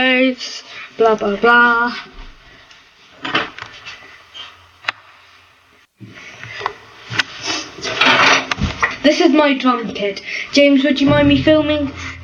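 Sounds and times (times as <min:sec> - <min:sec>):
speech: 0:00.0 - 0:02.2, 0:09.0 - 0:12.2
drawers being opened and closed: 0:07.6 - 0:08.9.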